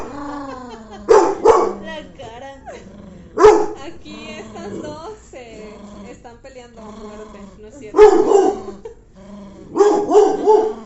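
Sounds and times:
laughter: 0.0 - 2.9, 3.8 - 9.0
small dog barking and yipping: 1.1 - 1.9, 3.4 - 3.8, 8.0 - 8.7, 9.8 - 10.8.

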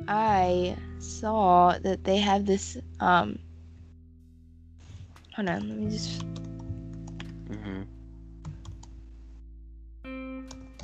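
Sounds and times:
speech: 0.1 - 3.5, 5.4 - 6.4, 7.5 - 8.0
typing on a computer keyboard: 5.5 - 7.4, 8.4 - 8.9.

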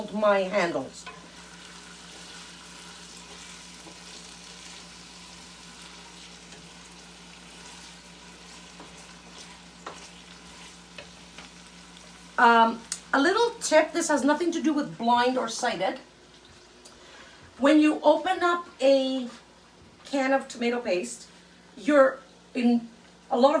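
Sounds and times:
onions sautéing and sizzling in a pot: 0.0 - 16.8
speech: 0.1 - 1.2, 12.4 - 16.1, 17.6 - 19.4, 20.1 - 23.5.

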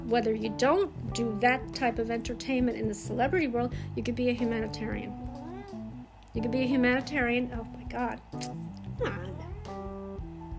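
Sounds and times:
speech: 0.1 - 5.2, 6.3 - 9.4
cat meowing after jumping onto a sofa: 5.3 - 6.0, 9.0 - 9.8.

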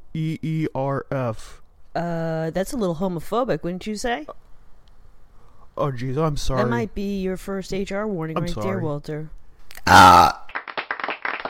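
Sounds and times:
speech: 0.2 - 4.5, 5.8 - 10.4
loud drawn-out burp: 9.8 - 10.5.

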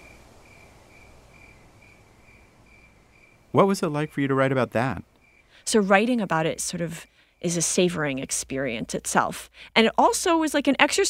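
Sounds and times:
crickets chirping at dusk: 0.0 - 8.8
low continuous outdoor hiss: 0.0 - 11.0
speech: 3.5 - 11.0.

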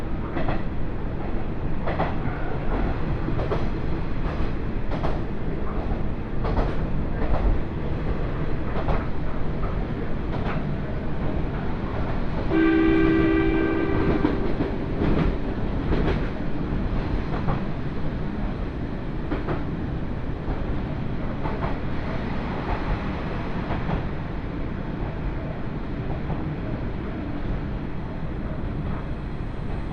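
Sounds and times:
rapid train running heard from inside the carriage: 0.0 - 29.9
rail clicks: 0.1 - 29.9
train horn or whistle: 12.5 - 14.7.

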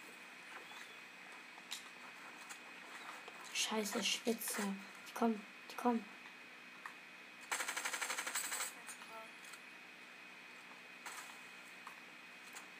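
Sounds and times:
speech: 3.6 - 6.2
automatic gunfire in a video game: 7.5 - 8.7.

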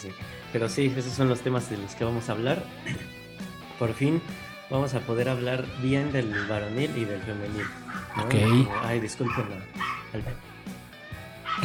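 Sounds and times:
speech: 0.0 - 3.2, 3.8 - 10.5
dog barking: 6.3 - 6.7, 7.6 - 10.3, 11.4 - 11.6.

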